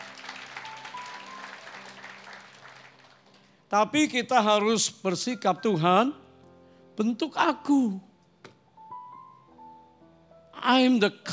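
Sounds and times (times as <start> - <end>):
audience applauding: 0.0 - 3.7
speech: 3.7 - 6.2, 7.0 - 8.1, 10.7 - 11.3.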